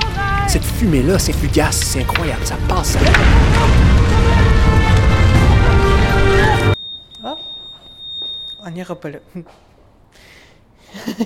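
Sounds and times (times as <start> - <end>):
speech: 0.6 - 4.1, 8.6 - 10.3
loud dense crash: 1.3 - 6.8
shrill electronic alarm tone: 6.7 - 9.5.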